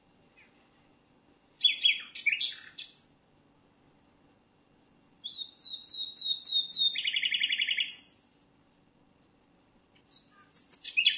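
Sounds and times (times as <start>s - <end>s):
common nightingale singing: 1.6s - 3.1s, 5.2s - 8.3s, 10.0s - 11.1s.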